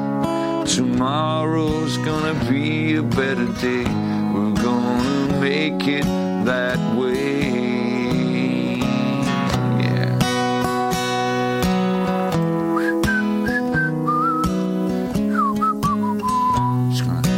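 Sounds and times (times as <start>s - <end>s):
steady strummed guitar accompaniment: 0.0s - 17.3s
speech: 0.7s - 7.4s
whistled melody in a song: 12.6s - 17.1s.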